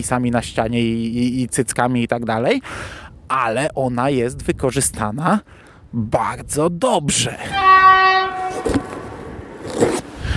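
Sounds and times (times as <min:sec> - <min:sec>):
speech: 0:00.0 - 0:08.0
train horn: 0:07.5 - 0:09.5.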